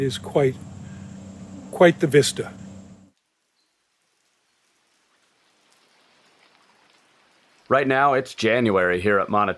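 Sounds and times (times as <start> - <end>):
speech: 0.0 - 0.7, 1.8 - 2.6, 7.7 - 9.5
brief louder rustle: 0.0 - 9.2
steady rain falling outdoors: 3.1 - 9.0.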